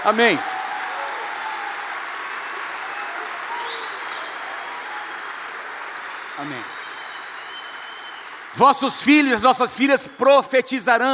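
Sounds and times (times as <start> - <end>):
speech: 0.0 - 0.5, 6.4 - 6.8, 8.6 - 11.1
audience clapping loudly at a church in Londrina: 0.0 - 10.3
faint whistles: 3.6 - 4.4, 6.4 - 8.3.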